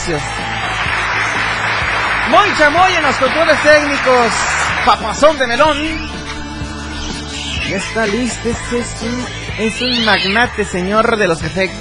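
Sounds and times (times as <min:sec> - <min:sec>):
crowd applause, many hands clapping: 0:00.0 - 0:05.9
speech: 0:00.1 - 0:00.6, 0:02.3 - 0:06.1, 0:07.7 - 0:11.7.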